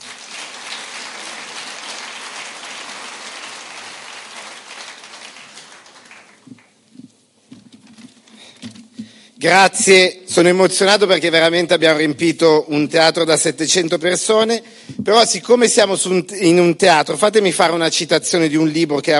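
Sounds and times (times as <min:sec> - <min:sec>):
large theatre audience clapping: 0:00.0 - 0:07.0
speech: 0:09.4 - 0:19.1.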